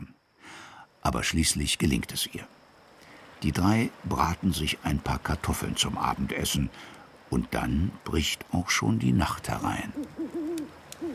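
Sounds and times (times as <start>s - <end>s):
speech: 1.0s - 2.6s, 3.4s - 10.4s
owl hooting at night: 9.8s - 11.1s.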